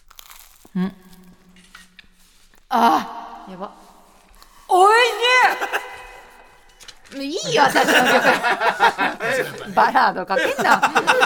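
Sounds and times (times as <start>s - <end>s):
crunchy bite into toasted bread topped with corned beef: 0.0s - 1.8s
speech: 0.7s - 1.1s, 2.7s - 3.8s, 7.1s - 11.2s
laughter: 5.2s - 6.4s, 7.4s - 11.2s.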